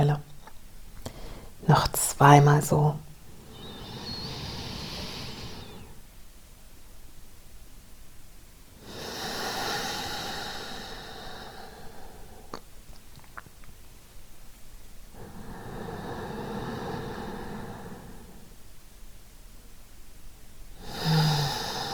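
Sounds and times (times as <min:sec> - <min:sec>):
slow deep breathing into the belly: 0:01.0 - 0:01.6, 0:03.1 - 0:06.1, 0:08.8 - 0:12.6, 0:15.1 - 0:18.6, 0:20.8 - 0:21.9
speech: 0:01.7 - 0:03.0.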